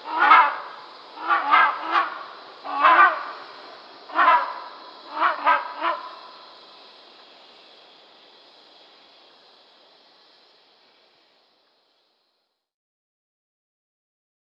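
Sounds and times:
rhinoceros hornbill uttering loud rasping honks: 0:00.0 - 0:06.5.

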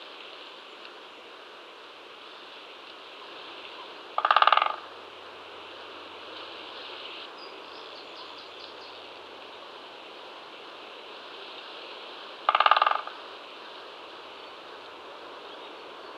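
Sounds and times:
steady background hiss: 0:00.0 - 0:16.1
Great spotted woodpecker drumming: 0:04.2 - 0:04.8, 0:12.5 - 0:13.2.

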